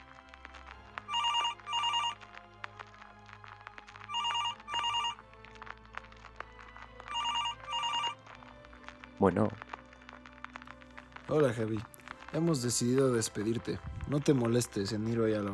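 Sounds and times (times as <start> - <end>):
phone ringing with an incoming call: 1.1 - 2.2, 4.1 - 5.2, 7.1 - 8.2
speech: 9.2 - 9.6, 11.3 - 15.5.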